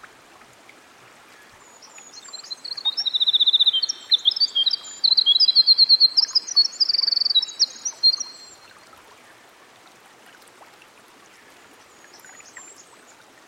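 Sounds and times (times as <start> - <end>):
Winter wren singing rippling notes and rattling trills by a stream: 1.6 - 8.6.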